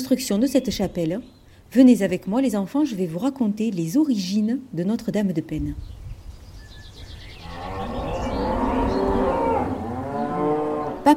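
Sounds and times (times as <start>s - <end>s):
speech: 0.0s - 6.0s
faint outdoor noise: 0.0s - 11.1s
cows mooing: 7.4s - 11.1s
low cow bellow: 7.4s - 11.1s.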